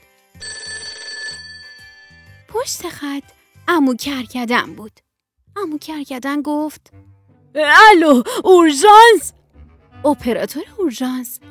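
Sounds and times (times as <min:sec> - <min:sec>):
telephone ringing with a bright electronic trill: 0:00.4 - 0:02.1
speech: 0:02.6 - 0:09.4, 0:10.0 - 0:11.4.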